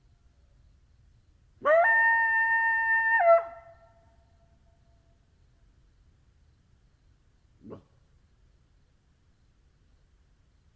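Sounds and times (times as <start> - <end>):
coyotes howling: 1.6 - 3.8.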